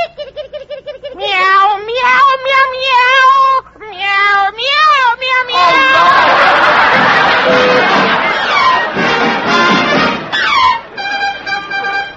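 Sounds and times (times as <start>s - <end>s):
laughter: 0.0s - 1.2s, 5.6s - 12.0s
kitten meowing while being put out the door: 1.2s - 6.2s.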